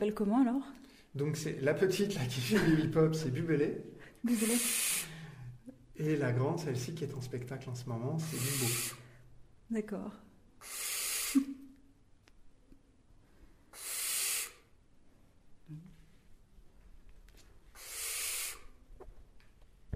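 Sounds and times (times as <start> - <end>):
speech: 0.0 - 4.9, 6.0 - 9.0, 9.7 - 11.6
owl hissing at a furry microphone cover: 4.3 - 5.2, 8.2 - 9.2, 10.6 - 11.6, 13.7 - 14.8, 17.7 - 18.9.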